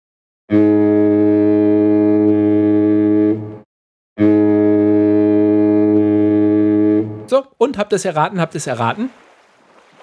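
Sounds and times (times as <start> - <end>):
speech: 0.5 - 0.7, 7.3 - 9.2
deep droning foghorn blasts: 0.5 - 3.6, 4.2 - 7.3.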